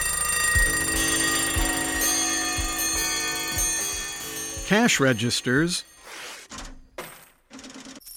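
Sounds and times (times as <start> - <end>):
alarm clock ticking used as a rock band's sound effect: 0.0 - 5.9
speech: 4.7 - 5.9.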